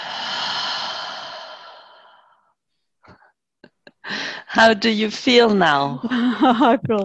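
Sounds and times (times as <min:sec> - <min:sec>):
long deep exhale: 0:00.0 - 0:02.5
speech: 0:04.6 - 0:07.0.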